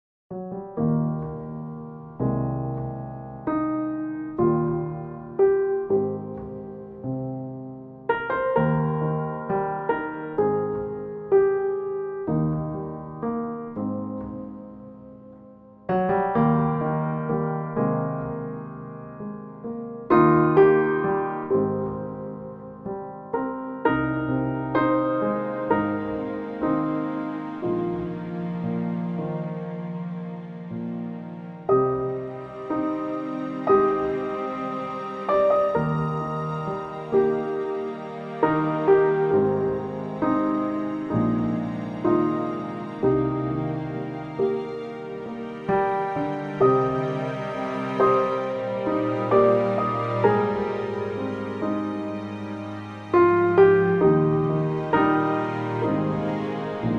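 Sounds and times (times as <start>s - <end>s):
Americana piano music on Pianoteq: 0.3s - 56.9s.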